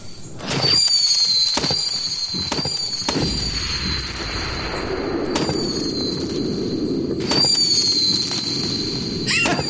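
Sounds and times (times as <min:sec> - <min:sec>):
missile fireworks bangs and pops: 0:00.4 - 0:09.6.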